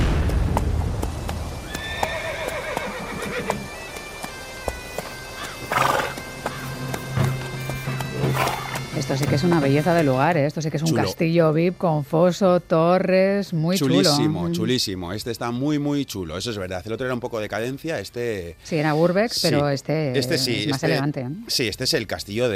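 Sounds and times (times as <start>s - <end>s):
sleigh horse hooves clip-clopping: 0.2s - 10.2s
sleigh horse neighing: 1.7s - 3.6s, 5.4s - 9.0s
sleigh horse snorting: 5.4s - 9.2s
speech: 9.1s - 22.5s.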